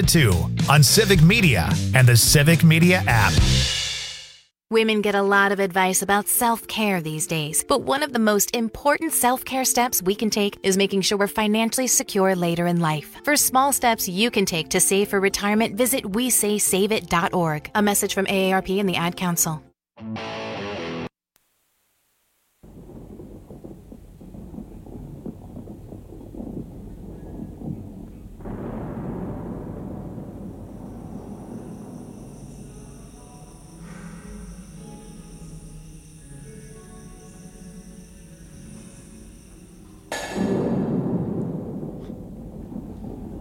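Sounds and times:
speech: 0:00.0 - 0:03.8, 0:04.7 - 0:20.7
deep sustained rumbling thunder in a thunderstorm: 0:22.6 - 0:43.3.

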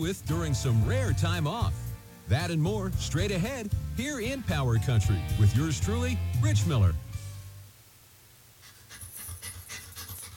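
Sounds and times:
speech: 0:00.0 - 0:07.0
dog panting: 0:08.6 - 0:10.3.

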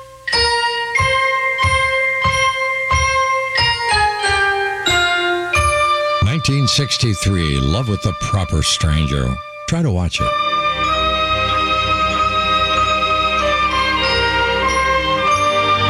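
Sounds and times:
ringing bells in a love song on the radio: 0:00.3 - 0:06.5, 0:10.9 - 0:15.8
speech: 0:06.7 - 0:10.6.

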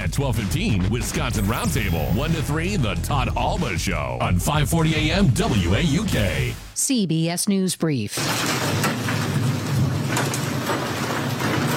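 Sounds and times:
speech: 0:00.2 - 0:09.2
hail falling during a storm: 0:08.2 - 0:11.7.

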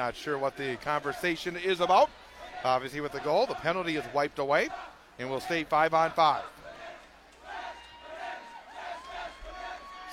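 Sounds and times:
speech: 0:00.0 - 0:06.6
student section fans chanting and cheering: 0:00.0 - 0:10.1.

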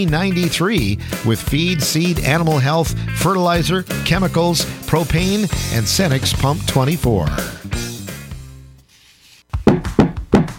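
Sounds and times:
speech: 0:00.0 - 0:07.8
short musical ending: 0:00.0 - 0:08.9, 0:09.5 - 0:10.5
loud heavy knocks on a door: 0:09.6 - 0:10.5.

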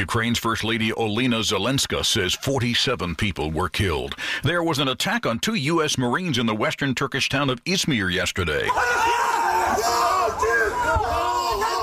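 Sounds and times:
speech: 0:00.0 - 0:10.5
angry mob of many voices yelling an anti-American chant: 0:08.7 - 0:11.8.

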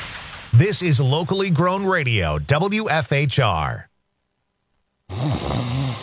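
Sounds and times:
speech: 0:00.6 - 0:03.9
person snoring: 0:05.1 - 0:06.0.

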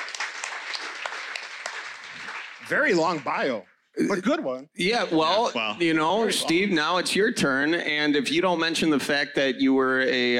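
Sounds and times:
audience applause: 0:00.0 - 0:03.6
speech: 0:02.7 - 0:10.3.

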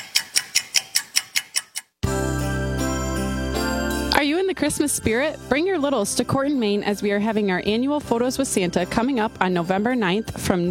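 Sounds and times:
clock ticking: 0:00.0 - 0:02.0
loud sustained chiming musical tone: 0:02.1 - 0:04.6
speech: 0:04.2 - 0:10.7.

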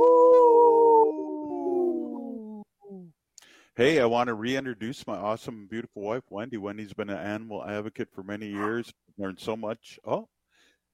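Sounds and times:
dog howling: 0:00.0 - 0:02.6, 0:08.6 - 0:08.8
speech: 0:03.8 - 0:10.4.

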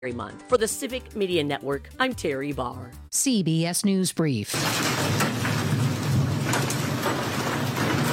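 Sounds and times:
speech: 0:00.0 - 0:05.4
hail falling during a storm: 0:04.5 - 0:08.1.

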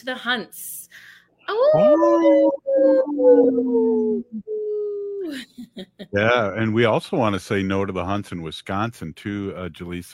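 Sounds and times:
speech: 0:00.0 - 0:10.1
wolf of the Minnesota wolf population howling: 0:01.6 - 0:05.3.

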